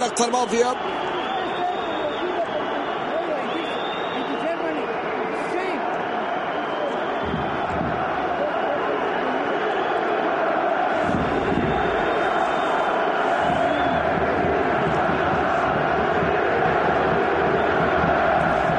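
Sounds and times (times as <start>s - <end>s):
speech: 0.0s - 1.2s
fans in a packed football stadium roaring: 0.0s - 18.7s.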